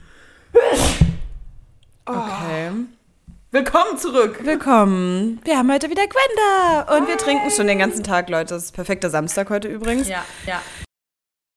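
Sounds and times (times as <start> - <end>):
loud sneeze: 0.5 - 1.3
speech: 3.6 - 10.8.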